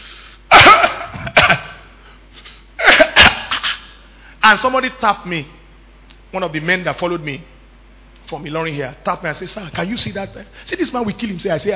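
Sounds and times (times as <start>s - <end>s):
person imitating a heavy rasping smoker's cough: 0.5s - 2.0s, 2.8s - 4.0s
speech: 4.5s - 5.6s, 6.3s - 7.5s, 8.2s - 11.7s.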